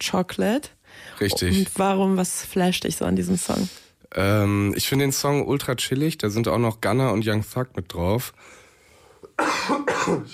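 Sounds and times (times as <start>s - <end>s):
speech: 0.0s - 8.6s, 9.4s - 10.3s
person coughing after being ill: 9.3s - 10.3s.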